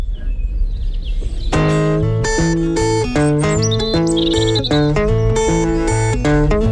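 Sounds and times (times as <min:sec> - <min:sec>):
birds chirping and twittering: 0:00.0 - 0:06.7
loud rhythmic acoustic guitar piece: 0:01.2 - 0:06.7.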